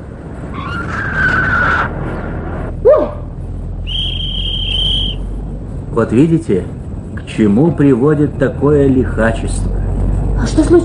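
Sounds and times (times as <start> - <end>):
steady car engine rumble: 0.0 - 10.8
car skidding with loud tire squeal: 0.4 - 5.3
speech: 6.0 - 9.8, 10.4 - 10.8.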